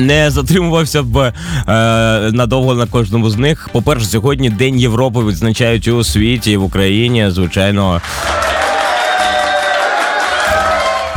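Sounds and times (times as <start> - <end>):
speech: 0.0 - 8.6
large crowd applauding: 7.8 - 11.1.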